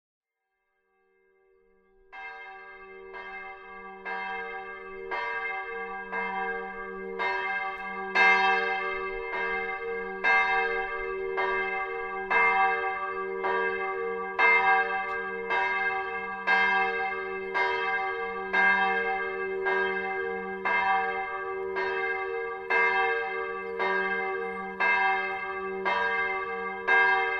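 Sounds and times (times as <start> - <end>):
bell in Dobbertin: 0.8 - 27.3.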